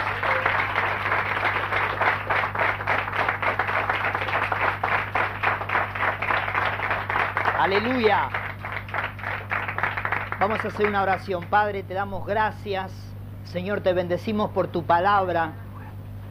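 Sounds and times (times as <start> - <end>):
audience applauding: 0.0 - 11.6
low steady hum: 0.0 - 16.3
speech: 7.6 - 8.4, 10.4 - 15.6.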